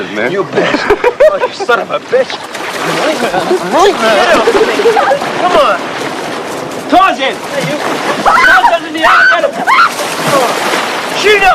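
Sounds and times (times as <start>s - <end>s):
speech: 0.0s - 6.1s, 6.9s - 11.5s
water churning and sloshing: 0.0s - 11.5s
laughter: 0.4s - 5.6s
people splashing and plunging into water: 1.7s - 11.5s
people shouting and whooping excitedly: 8.1s - 10.5s.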